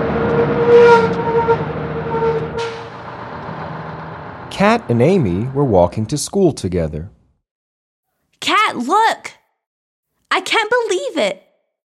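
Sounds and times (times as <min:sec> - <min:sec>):
bus engine droning as it pulls in and stops: 0:00.0 - 0:07.1
bus brakes hissing as it comes to a stop: 0:02.3 - 0:03.9
speech: 0:04.6 - 0:07.2, 0:08.4 - 0:09.4, 0:10.3 - 0:11.4.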